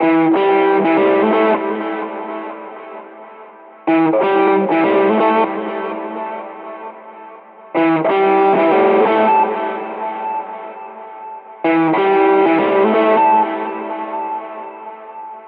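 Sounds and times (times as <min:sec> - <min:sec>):
blues guitar rhythm with reverb: 0:00.0 - 0:15.4.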